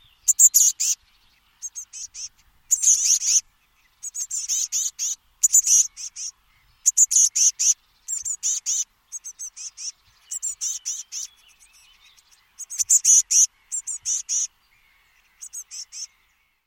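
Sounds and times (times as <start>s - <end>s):
high bird chirps: 0.0s - 1.0s, 1.6s - 3.4s, 4.0s - 14.5s, 15.3s - 16.2s.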